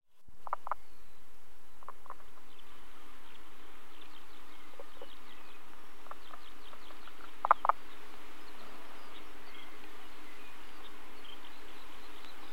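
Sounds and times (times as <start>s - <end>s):
faint chirps: 0.1s - 12.5s
Common spadefoot knocking calls: 0.4s - 0.9s, 1.8s - 2.6s, 4.7s - 8.0s.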